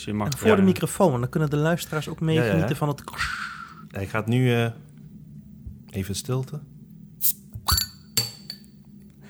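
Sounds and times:
speech: 0.0 - 4.9, 6.0 - 7.4
small beer bottle cap clinking against a hard surface: 7.2 - 9.2.

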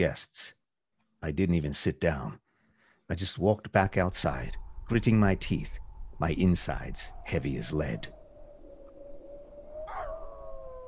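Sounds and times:
speech: 0.0 - 0.6, 1.2 - 2.4, 3.1 - 8.2
low rumble: 3.9 - 8.4
dogs howling: 8.5 - 10.8.

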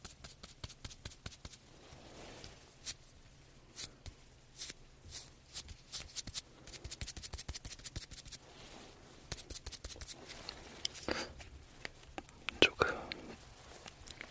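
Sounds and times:
dry tapping and patting of a soft puff: 0.0 - 1.6, 3.8 - 8.4, 9.3 - 14.2
faint low steady hum: 0.1 - 14.2.

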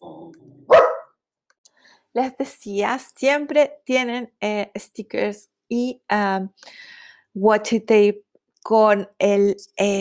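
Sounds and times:
dog growling low and rumbling: 0.0 - 0.8
dog barking loud and sharp: 0.7 - 1.2
speech: 2.1 - 9.9.

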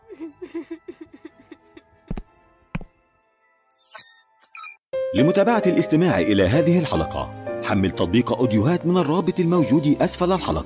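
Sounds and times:
person sobbing in a living room: 0.0 - 2.0
speech: 0.2 - 0.9, 5.1 - 10.6.

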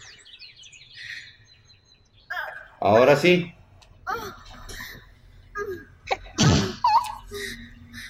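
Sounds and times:
speech: 2.8 - 3.6
sneeze: 6.4 - 6.8.

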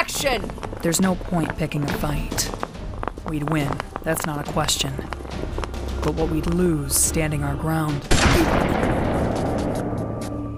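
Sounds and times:
speech: 0.2 - 2.6, 3.3 - 9.8
warning gunshots fired by armed guards: 8.1 - 10.1.

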